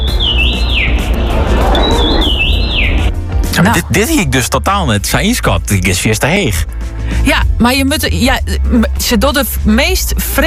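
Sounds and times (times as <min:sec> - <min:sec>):
common rosefinch singing: 0:00.0 - 0:03.1
speech: 0:03.6 - 0:10.4.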